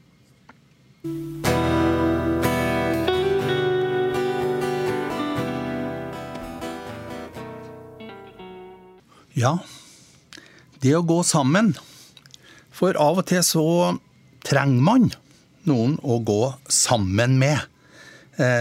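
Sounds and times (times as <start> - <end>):
speech: 1.0 - 1.4, 9.4 - 9.7, 10.8 - 11.9, 12.8 - 17.7, 18.4 - 18.5
song melody with sustained harmonic tones and layered instruments: 1.1 - 9.0.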